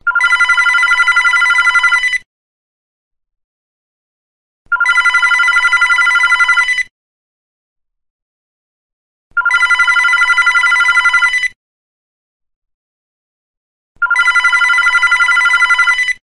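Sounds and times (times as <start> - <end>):
landline telephone ringing: 0.1 - 2.3, 4.7 - 6.9, 9.4 - 11.6, 14.0 - 16.2.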